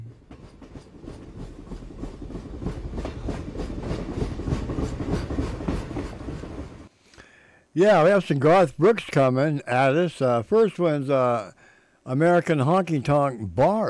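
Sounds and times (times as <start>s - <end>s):
train rumbling along rails with wheels clattering: 0.0s - 6.9s
speech: 7.8s - 13.8s.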